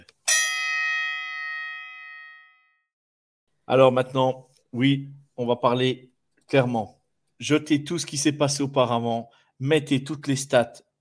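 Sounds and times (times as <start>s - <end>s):
gong strike ringing as round start effect: 0.3s - 2.6s
speech: 3.7s - 10.9s.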